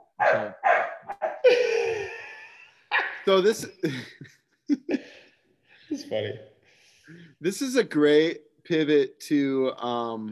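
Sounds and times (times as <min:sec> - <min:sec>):
puppy barking at an older dog: 0:00.0 - 0:01.5
puppy whiny yelp: 0:00.2 - 0:01.5
speech: 0:00.3 - 0:00.6, 0:03.3 - 0:04.9, 0:06.0 - 0:06.5, 0:07.1 - 0:10.3
laughter: 0:01.4 - 0:05.2.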